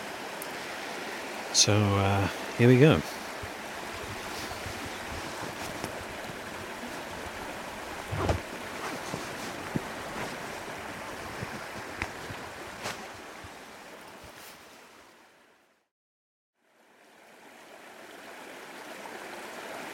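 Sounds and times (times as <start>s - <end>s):
rushing river water: 0.0s - 15.7s, 16.6s - 19.9s
speech: 1.6s - 3.1s
person wading in a river: 3.0s - 13.5s.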